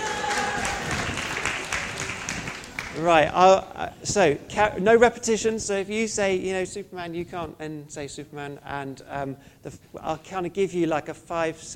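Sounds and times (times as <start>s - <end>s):
audience applause for volunteers at a live quiz-style event: 0.0s - 3.0s
speech: 3.0s - 11.7s.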